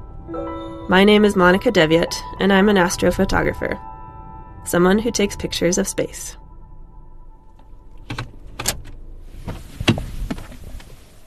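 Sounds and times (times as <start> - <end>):
speech: 0.3 - 3.9, 4.6 - 6.4
car trunk opening: 7.6 - 11.2.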